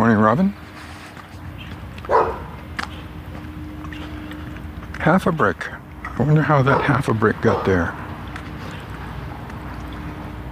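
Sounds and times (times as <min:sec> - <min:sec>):
steady low hum: 0:00.0 - 0:10.5
speech: 0:00.2 - 0:00.6, 0:05.0 - 0:08.0
dog barking in a backyard: 0:02.1 - 0:02.6, 0:06.6 - 0:07.9.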